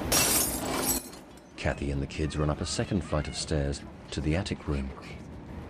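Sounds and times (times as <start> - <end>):
glass of a framed photo smashing: 0.1 - 1.4
glass shards scattering: 0.1 - 1.4
speech: 1.6 - 5.2.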